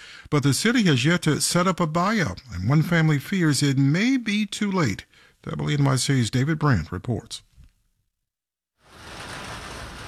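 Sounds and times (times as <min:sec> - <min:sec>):
speech: 0:00.3 - 0:07.5
rain pelting the sidewalk along a street in Hollis Queens: 0:08.8 - 0:10.0.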